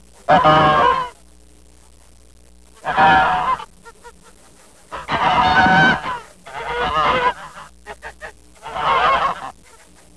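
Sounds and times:
goose honking: 0:00.3 - 0:01.2, 0:02.8 - 0:03.7, 0:04.9 - 0:09.6.

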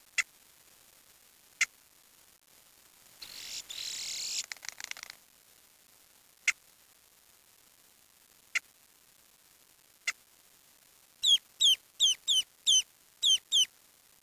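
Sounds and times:
bird clicks: 0:04.4 - 0:05.2
high bird chirps: 0:11.2 - 0:13.7.

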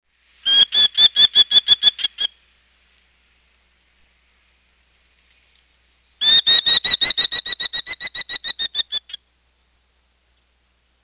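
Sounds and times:
merlin calling: 0:00.4 - 0:02.4, 0:05.6 - 0:09.3.

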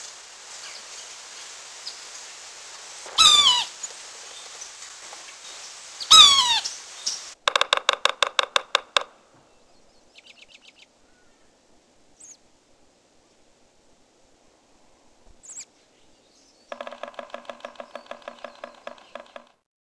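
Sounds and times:
yellow-bellied sapsucker nasal squealing mew calls: 0:03.1 - 0:04.8, 0:05.5 - 0:07.4, 0:16.7 - 0:19.5
yellow-bellied sapsucker rapid tapping pulses: 0:07.4 - 0:09.1, 0:16.7 - 0:19.6.

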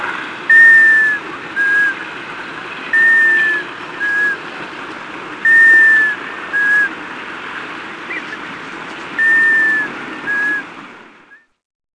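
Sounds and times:
surf-like hiss: 0:00.0 - 0:11.4
White-winged Scoter whistling: 0:00.5 - 0:02.0, 0:02.9 - 0:04.4, 0:05.4 - 0:06.9, 0:09.2 - 0:10.7.

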